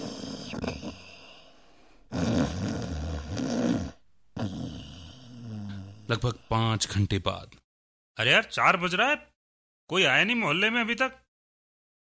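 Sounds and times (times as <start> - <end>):
sleeping man snoring loudly: 0.0 - 6.4
speech: 6.1 - 7.6, 8.2 - 9.3, 9.9 - 11.2.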